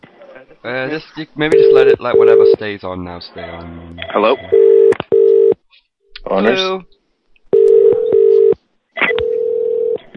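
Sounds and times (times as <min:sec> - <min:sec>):
speech: 0:00.6 - 0:04.7, 0:06.3 - 0:07.0
telephone ringing with electronic buzzing tone: 0:01.5 - 0:02.6, 0:04.5 - 0:05.6, 0:07.6 - 0:10.0.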